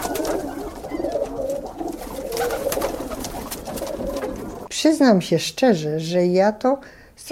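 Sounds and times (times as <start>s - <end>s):
pigeons cooing at a neighbour's garden pigeon loft: 0.0s - 4.7s
speech: 4.8s - 7.2s.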